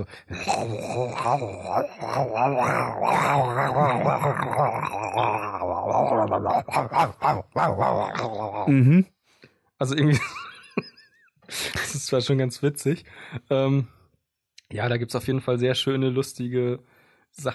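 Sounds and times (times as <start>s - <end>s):
speech: 0.0s - 9.1s, 9.8s - 10.9s, 11.5s - 14.0s, 14.7s - 17.5s
person's voice imitating a tiger's growl: 0.3s - 9.1s
laughter: 10.0s - 12.1s.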